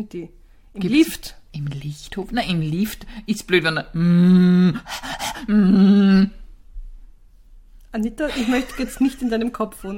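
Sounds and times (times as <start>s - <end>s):
speech: 0.0s - 6.4s, 7.9s - 9.9s
person imitating panting with breathy huffs: 4.0s - 6.4s.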